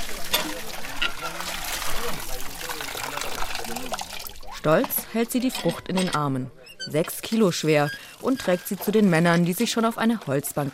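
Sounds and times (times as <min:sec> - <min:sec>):
water splashing while washing a watermelon: 0:00.0 - 0:05.9, 0:07.2 - 0:10.7
speech: 0:04.6 - 0:10.7.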